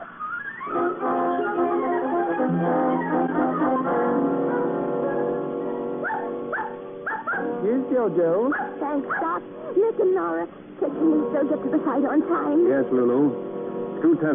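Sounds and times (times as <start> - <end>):
several dogs barking, whining and whimpering at a dog hotel: 0.0 - 7.6, 8.5 - 9.4
speech: 0.7 - 1.2, 7.7 - 14.3.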